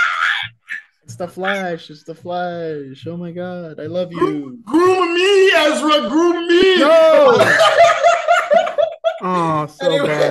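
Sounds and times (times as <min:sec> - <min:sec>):
person imitating a girl screaming with a shrill strained cry: 0:00.0 - 0:00.8
speech: 0:01.1 - 0:07.9, 0:09.2 - 0:10.2
laughter: 0:07.0 - 0:10.2.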